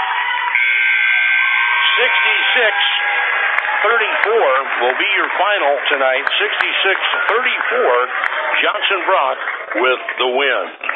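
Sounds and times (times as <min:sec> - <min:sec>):
crowd roaring in the stands: 0:00.0 - 0:10.8
basketball game-ending arena buzzer blaring: 0:00.4 - 0:04.0
speech: 0:02.0 - 0:10.9.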